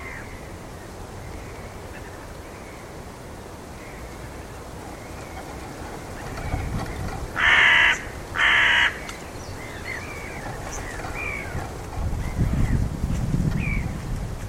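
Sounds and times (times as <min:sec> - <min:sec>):
bird giving harsh loud caws: 0:00.0 - 0:00.4, 0:04.8 - 0:12.6
low rumbling background noise: 0:00.0 - 0:14.4.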